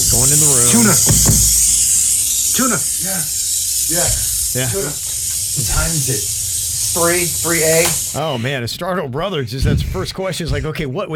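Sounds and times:
steady bright sizzling hiss: 0.0 - 8.5
speech: 4.6 - 6.3, 6.9 - 11.1.

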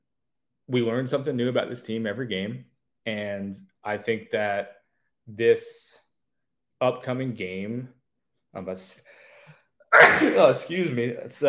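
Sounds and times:
speech: 0.7 - 6.0, 6.8 - 9.2, 9.9 - 11.4
loud sharp sneeze: 9.9 - 10.8.

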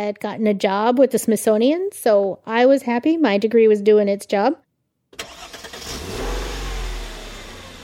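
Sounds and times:
speech: 0.0 - 4.6
car engine revving, pulling out of driveway: 5.2 - 7.8.

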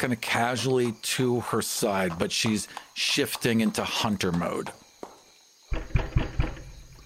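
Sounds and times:
speech: 0.0 - 4.8
quiet hiss: 0.0 - 7.0
firm knocks on a door: 5.7 - 7.0.

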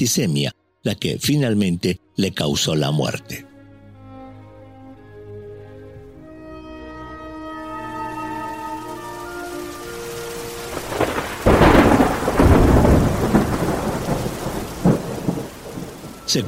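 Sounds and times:
speech: 0.0 - 3.5
steady rain: 6.1 - 16.4
loud rolling thunder: 8.4 - 16.4.

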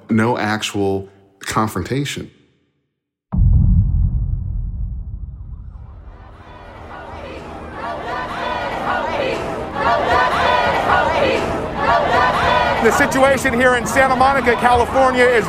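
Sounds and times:
speech: 0.1 - 2.4, 12.8 - 15.4
low rumbling: 3.3 - 7.7
dense protest crowd chattering in Santa Monica California: 6.2 - 15.4.

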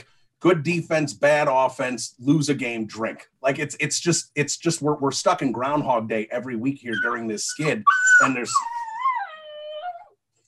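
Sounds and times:
speech: 0.0 - 8.8
dog howling: 6.9 - 10.1.

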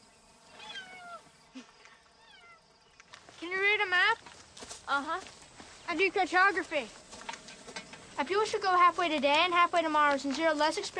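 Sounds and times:
cat meowing: 0.6 - 1.3
speech: 5.0 - 7.0, 8.2 - 10.9.

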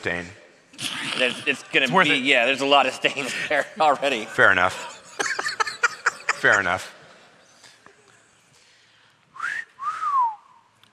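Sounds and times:
speech: 0.0 - 4.9, 6.4 - 7.0
laughter: 1.0 - 7.4
person whistling: 9.4 - 10.7.

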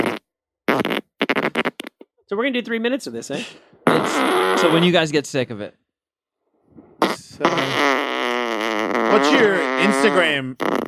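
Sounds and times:
farts: 0.0 - 2.1, 3.8 - 4.9, 7.0 - 10.8
speech: 2.3 - 5.8, 9.1 - 10.8.

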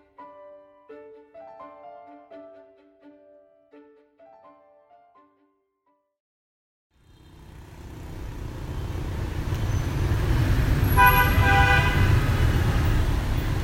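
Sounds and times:
busy motorbike street traffic in Hanoi Vietnam: 7.0 - 13.6
loud horn honk: 10.9 - 12.4.

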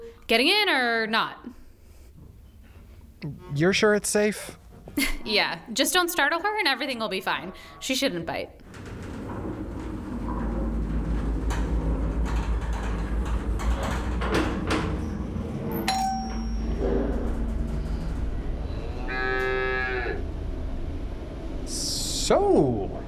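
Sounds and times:
speech: 0.3 - 1.6, 3.2 - 8.8
50-year-old elevator carrying livestock moving slowly: 6.9 - 23.0
cow mooing: 18.6 - 20.3.

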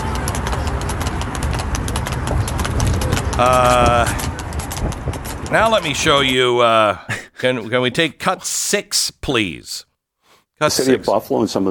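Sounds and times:
horse hooves galloping: 0.0 - 7.0
busy background: 0.0 - 8.2
speech: 3.4 - 4.3, 5.5 - 9.9, 10.6 - 11.7.

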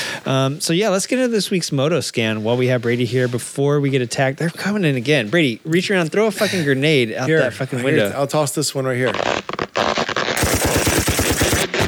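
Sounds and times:
speech: 0.2 - 9.6
rapid automatic gunfire cover-fire sound effect: 10.4 - 11.8.

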